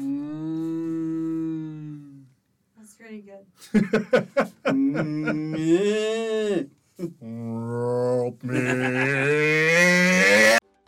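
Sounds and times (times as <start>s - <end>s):
person imitating a cow mooing: 0.0s - 2.3s, 4.7s - 10.6s
speech: 3.2s - 9.3s
laughter: 3.6s - 5.7s, 8.4s - 9.4s.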